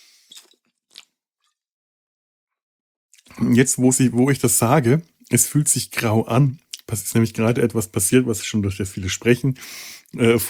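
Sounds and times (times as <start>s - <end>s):
person taking a small sip of a drink: 0.0s - 1.6s
speech: 3.3s - 10.4s.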